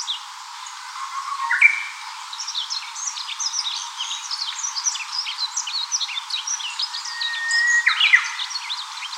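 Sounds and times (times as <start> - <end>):
Japanese bush warbler singing: 0.0 - 9.1
other birds chirping and twittering: 0.9 - 9.1.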